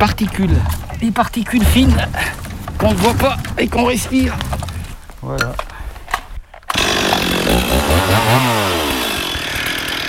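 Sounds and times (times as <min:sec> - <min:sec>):
speech: 0:00.0 - 0:04.6, 0:05.2 - 0:05.7, 0:07.5 - 0:08.9
chainsaw roaring at full throttle in a private forest: 0:06.7 - 0:10.0.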